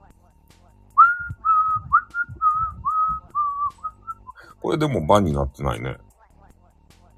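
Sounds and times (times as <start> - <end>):
soft low thumps: 1.0 - 4.2
person whistling a melody: 1.0 - 4.4
speech: 4.7 - 6.0.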